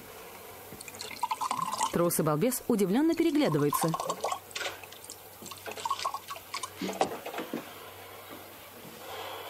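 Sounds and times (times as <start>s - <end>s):
liquid pouring from a bottle into glasses: 0.8s - 2.1s, 3.1s - 7.0s
speech: 2.0s - 4.2s.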